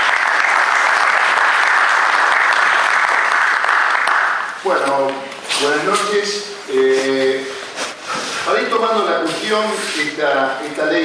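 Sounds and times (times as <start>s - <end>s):
audience applause: 0.0s - 5.2s
speech: 4.6s - 7.5s, 8.5s - 11.0s.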